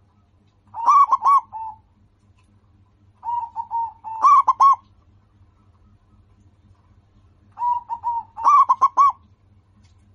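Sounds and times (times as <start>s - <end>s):
faint low hum: 0.0s - 10.1s
local-strain zebra dove cooing: 0.7s - 2.0s, 3.2s - 4.9s, 7.6s - 9.3s.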